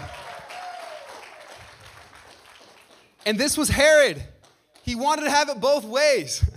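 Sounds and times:
audience applause: 0.0 - 4.9
speech: 3.3 - 4.3, 4.9 - 6.5.

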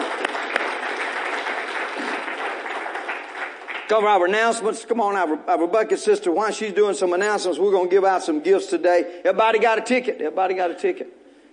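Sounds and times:
audience clapping in praise: 0.0 - 4.6
speech: 3.9 - 11.2.

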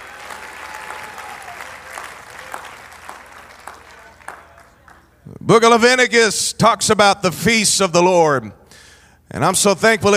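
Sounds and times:
audience clapping hands: 0.0 - 5.2
speech: 5.5 - 8.6, 9.3 - 10.1.

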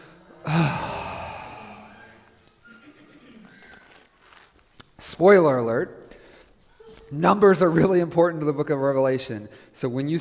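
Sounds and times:
group of people groaning aloud together: 0.0 - 2.3
speech: 5.2 - 6.0, 7.1 - 10.1.

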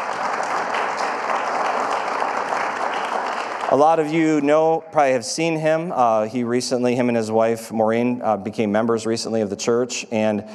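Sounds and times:
room full of people applauding: 0.0 - 4.4
speech: 3.7 - 10.5.

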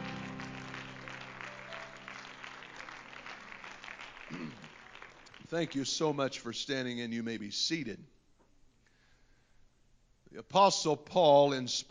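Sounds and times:
audience clapping hands: 0.0 - 6.2
speech: 5.5 - 8.2, 10.5 - 11.8.

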